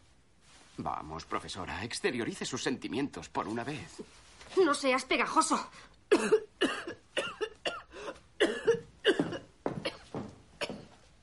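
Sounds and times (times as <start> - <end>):
speech: 0.8 - 6.4
woman coughing: 6.1 - 11.0.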